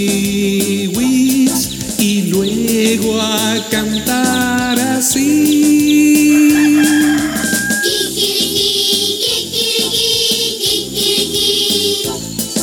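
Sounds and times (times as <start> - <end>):
bouncy steady musical beat: 0.0 - 12.6
speech: 2.4 - 7.0
rooster crowing: 6.2 - 8.3.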